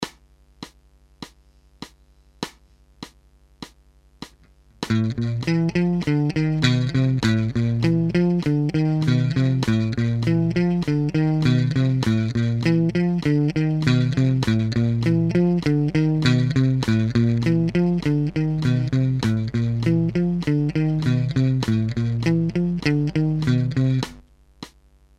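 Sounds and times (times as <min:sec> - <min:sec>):
guitar playing a basic exercise: 0:04.8 - 0:24.2.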